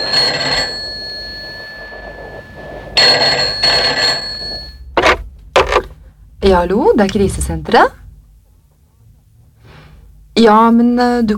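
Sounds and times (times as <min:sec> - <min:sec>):
telephone ringing during a call from a phone booth: 0:00.0 - 0:05.9
speech: 0:06.4 - 0:08.0, 0:10.4 - 0:11.3.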